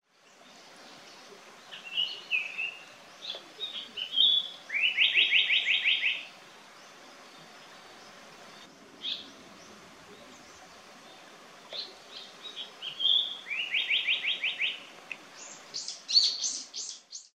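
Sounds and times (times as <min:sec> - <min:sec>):
Japanese paradise flycatcher calling: 0:01.2 - 0:17.3.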